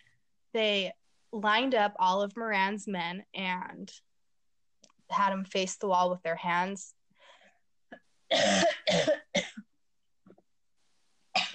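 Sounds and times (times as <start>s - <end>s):
speech: 0.5s - 4.1s, 5.1s - 7.0s, 8.3s - 9.2s
man coughing: 8.3s - 9.6s, 11.4s - 11.5s.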